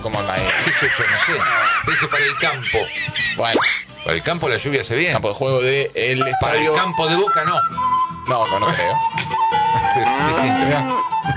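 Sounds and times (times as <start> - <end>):
laughter: 0.0 - 4.5, 9.8 - 11.3
speech: 0.0 - 9.3, 10.0 - 11.3
cow mooing: 9.9 - 11.3.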